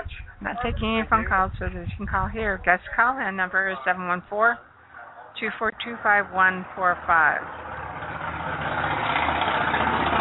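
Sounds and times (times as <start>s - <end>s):
speech: 0.4s - 4.7s, 5.4s - 7.6s
traffic driving by outside: 3.0s - 10.1s.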